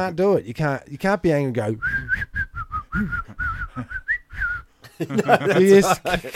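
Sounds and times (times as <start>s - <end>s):
speech: 0.0s - 2.3s, 2.9s - 4.0s, 5.0s - 6.3s
person whistling a bright bouncy happy tune: 1.8s - 4.7s
laughter: 4.8s - 6.3s.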